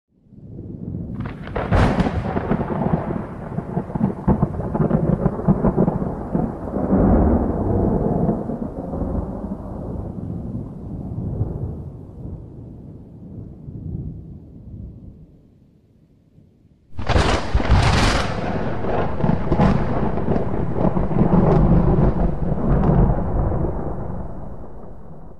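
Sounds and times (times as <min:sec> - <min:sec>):
thunder strike: 0:01.2 - 0:09.3, 0:16.9 - 0:25.3.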